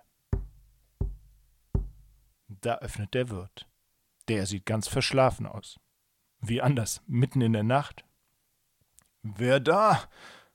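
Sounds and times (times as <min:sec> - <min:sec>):
heavy knocking on a wooden door: 0:00.4 - 0:02.2
speech: 0:02.6 - 0:03.7, 0:04.3 - 0:05.8, 0:06.4 - 0:08.1, 0:09.2 - 0:10.4.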